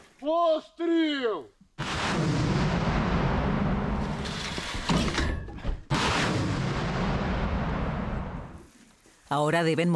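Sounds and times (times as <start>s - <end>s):
speech: 0.2s - 1.6s, 9.3s - 9.9s
heavy artillery blasts near the front line: 1.8s - 8.6s.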